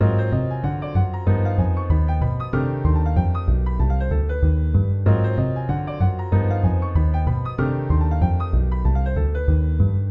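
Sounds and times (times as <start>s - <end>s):
chord voicings with bass: 0.0s - 10.0s.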